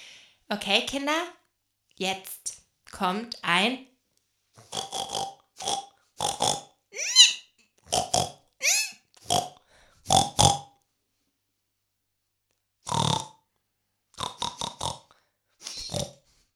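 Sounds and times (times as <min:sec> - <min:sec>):
speech: 0:00.5 - 0:01.4, 0:02.0 - 0:03.9
person imitating a pig with snorting oinks and grunts: 0:04.6 - 0:10.8, 0:12.9 - 0:13.4, 0:14.2 - 0:16.2.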